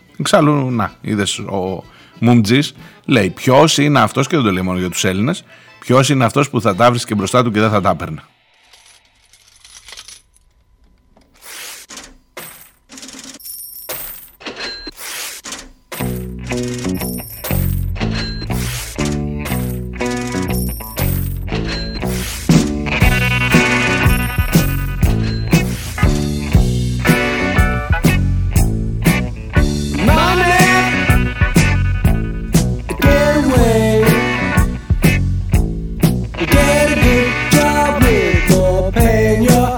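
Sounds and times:
speech: 0.2 - 8.4
register clatter: 11.2 - 26.0
rhythmic loop of clinking coins: 11.4 - 26.0
full rock band playing: 16.0 - 39.7
bass line: 16.3 - 39.7.

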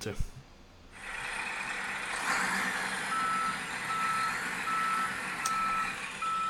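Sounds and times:
rumbling garbage truck engine: 0.9 - 6.4
garbage truck hiss: 1.0 - 6.2
garbage truck reversing alarm beeping: 3.0 - 6.4.

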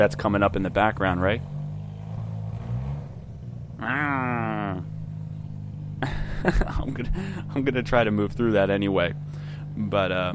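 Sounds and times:
speech: 0.0 - 1.6, 3.8 - 4.1, 6.0 - 9.2, 9.8 - 10.3
big Mustang car engine idling with a slight rev: 0.0 - 10.3
person exclaiming: 3.8 - 5.0
laughter: 6.0 - 7.7.

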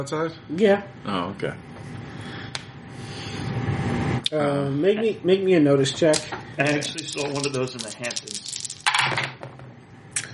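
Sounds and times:
speech: 0.0 - 2.3, 4.3 - 8.4
Fate dice rolling across a hard surface: 6.6 - 9.4.

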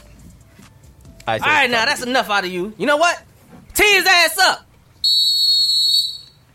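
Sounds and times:
speech: 1.3 - 5.2
shrill whistle blast used as segment sound effect: 5.0 - 6.5.

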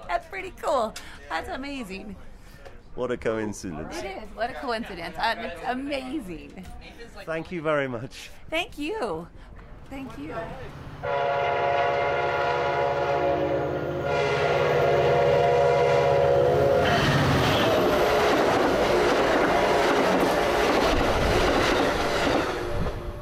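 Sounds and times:
speech: 0.4 - 2.3, 3.0 - 12.7
train rumbling at a station platform: 9.6 - 23.2
train horn at a station platform in Albuquerque New Mexico: 11.0 - 18.5.

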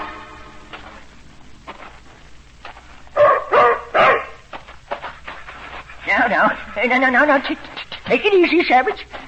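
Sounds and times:
ex-army German shepherd barking: 3.2 - 4.4
speech: 6.8 - 9.2.

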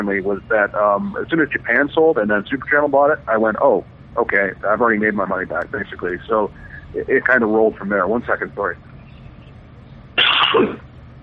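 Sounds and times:
speech: 0.0 - 8.9, 10.5 - 10.9
short harsh cough with a throaty rasp: 10.2 - 10.8.

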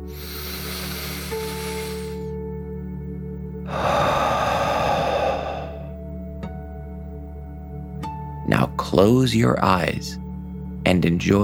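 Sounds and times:
deep breathing in and out during a children's guided relaxation exercise: 0.0 - 2.4, 3.6 - 6.0
speech: 8.5 - 10.2, 10.9 - 11.4.

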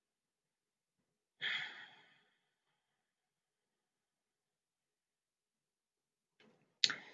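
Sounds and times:
long slow deep breath during a relaxation exercise: 1.4 - 2.6.

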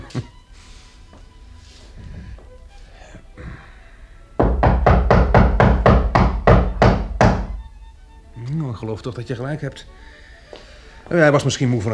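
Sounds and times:
speech: 0.1 - 0.3, 8.8 - 10.2, 11.1 - 11.9
loud knocks on a professor's door: 4.4 - 7.8.

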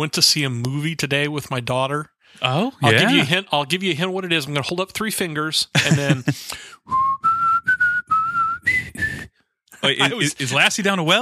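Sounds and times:
speech: 0.0 - 7.0, 9.8 - 11.1
laughter: 2.8 - 3.4, 5.7 - 6.7, 9.8 - 10.8
person whistling a TV theme tune: 6.5 - 9.3.

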